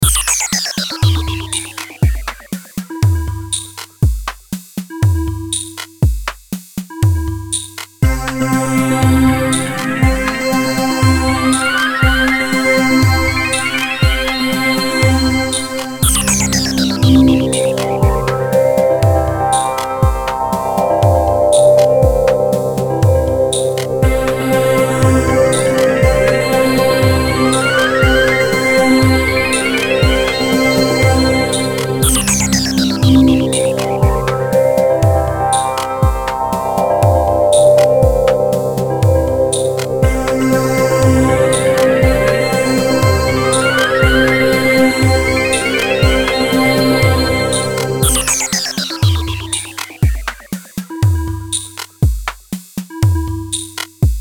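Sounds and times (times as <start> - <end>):
synth: 0.0 - 3.7, 8.0 - 51.8
slow eerie industrial beat: 0.0 - 4.2, 6.9 - 52.3
drums: 0.0 - 54.1.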